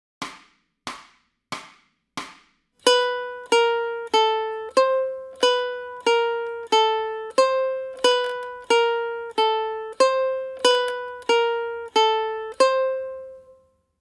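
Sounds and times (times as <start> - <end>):
ukulele warm-up in B: 2.8 - 13.7.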